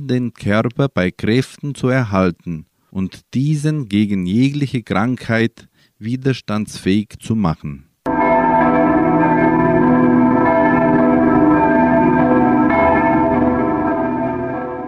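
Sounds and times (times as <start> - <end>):
speech: 0.0 - 7.9
church bells ringing: 8.1 - 14.8.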